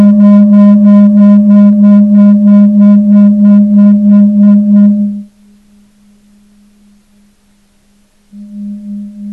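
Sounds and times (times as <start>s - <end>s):
pulsating low pure tone with buzzy overlay: 0.0s - 5.3s, 8.4s - 9.3s
faint plain steady hum: 0.0s - 9.3s.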